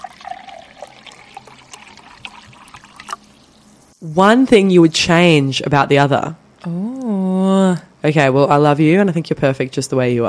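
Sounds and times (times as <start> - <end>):
liquid pouring as drinks are served: 0.0 - 5.0
speech: 4.0 - 6.9, 7.6 - 10.2.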